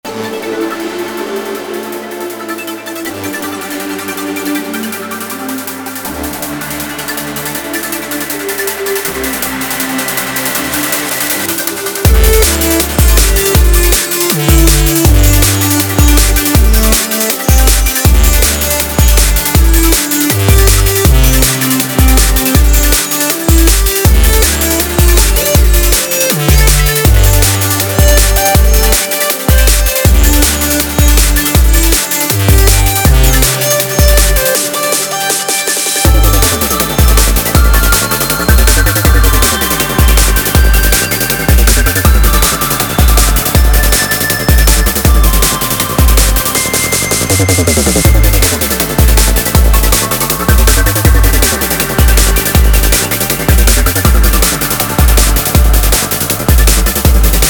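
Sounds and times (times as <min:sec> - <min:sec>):
drum and bass music: 0:00.0 - 0:57.4.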